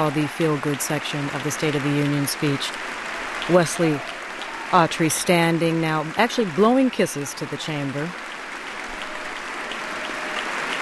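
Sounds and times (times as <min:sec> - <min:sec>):
speech: 0:00.0 - 0:08.3
applause in a legislative chamber during a State of the Union speech: 0:00.0 - 0:10.8.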